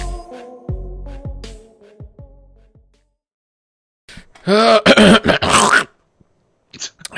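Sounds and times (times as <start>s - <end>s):
person clearing throat: 4.4s - 6.0s.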